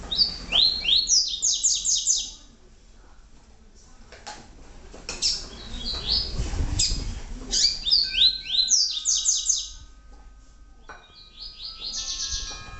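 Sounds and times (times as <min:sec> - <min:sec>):
Double-collared seedeater song with fast high downslurred repeated notes: 0:00.1 - 0:02.4, 0:05.2 - 0:06.4, 0:07.5 - 0:12.7.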